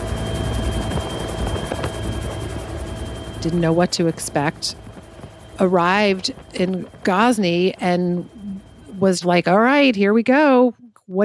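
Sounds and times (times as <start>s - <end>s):
helicopter flying out of Kabul to Ghazni: 0.0s - 11.2s
speech: 3.4s - 4.8s, 5.6s - 8.4s, 9.0s - 11.2s.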